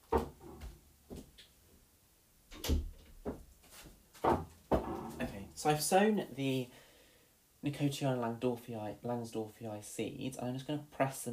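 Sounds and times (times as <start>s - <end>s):
indoor clunks and knocks: 0.0s - 1.3s, 4.2s - 5.6s
door being pushed shut and latching: 0.1s - 0.8s, 2.5s - 3.2s, 4.2s - 5.6s
speech: 5.6s - 6.8s, 7.6s - 11.3s.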